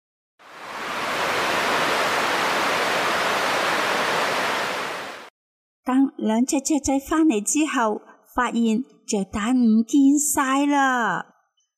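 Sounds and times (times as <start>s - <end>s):
huge ocean wave crashing at the seashore: 0.4s - 5.3s
speech: 5.9s - 11.3s.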